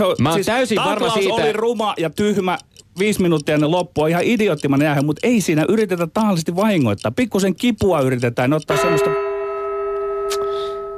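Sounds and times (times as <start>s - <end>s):
speech: 0.0s - 9.3s
bell or gong struck to end a debate: 8.7s - 10.9s.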